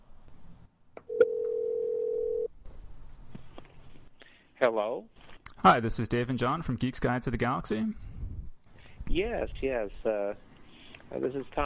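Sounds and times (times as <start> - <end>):
steady unbroken telephone dial tone: 1.0 - 2.5
speech: 4.6 - 8.1, 9.1 - 10.5, 11.1 - 11.6.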